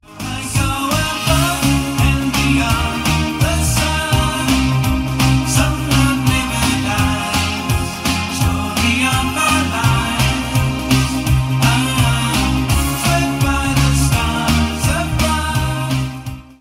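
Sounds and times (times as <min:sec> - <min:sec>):
pop ringtone: 0:00.1 - 0:16.5.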